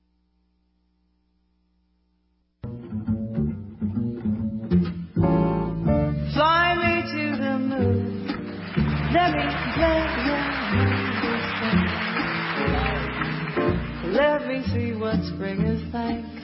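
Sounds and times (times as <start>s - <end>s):
steady instrumental jazz backing: 2.6s - 16.4s
woman singing smooth jazz melodic lines: 6.3s - 8.3s, 9.0s - 12.4s, 14.0s - 16.4s
speech: 14.5s - 16.4s.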